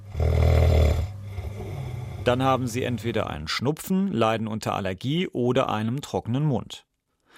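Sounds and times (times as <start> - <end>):
quiet breathing: 0.0 - 2.7, 7.1 - 7.3
loud nasal snore: 0.0 - 2.8
speech: 2.3 - 7.3.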